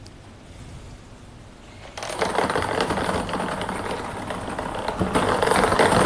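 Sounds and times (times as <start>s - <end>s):
lottery drawing machine spinning numbered balls for a sports lottery draw in Jiangsu: 1.8s - 6.0s.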